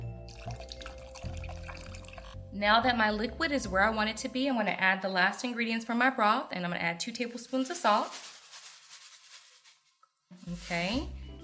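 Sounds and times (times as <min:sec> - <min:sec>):
cold water running into a pot of potatoes: 0:00.3 - 0:02.4
speech: 0:02.6 - 0:08.3, 0:10.5 - 0:11.4.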